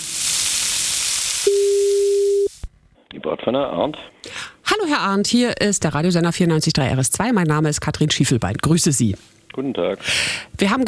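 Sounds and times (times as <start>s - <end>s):
telephone line sizzling hissing noise: 0.0s - 2.7s
speech: 3.3s - 4.2s, 4.8s - 10.8s.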